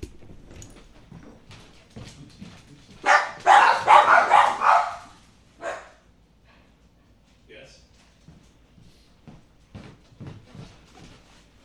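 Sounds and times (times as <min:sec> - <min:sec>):
dogs barking: 0:02.8 - 0:06.1
people talking: 0:07.5 - 0:08.0.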